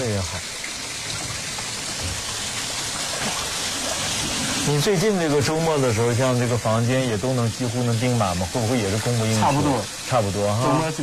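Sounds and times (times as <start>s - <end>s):
rushing falling water of a waterfall: 0.0s - 11.0s
speech: 0.2s - 0.6s, 4.7s - 11.0s.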